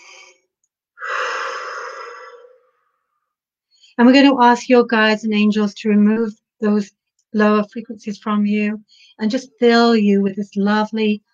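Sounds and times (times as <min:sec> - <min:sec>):
deep breath in and out during a guided relaxation: 0:00.0 - 0:04.0
speech: 0:04.0 - 0:11.3.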